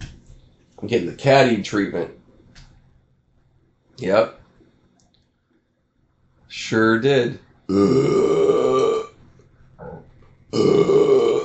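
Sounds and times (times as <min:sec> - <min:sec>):
speech: 0:00.8 - 0:02.2, 0:04.0 - 0:04.4, 0:06.5 - 0:08.4
long loud burps with a deep rumbling tone: 0:07.7 - 0:09.2, 0:09.8 - 0:11.4.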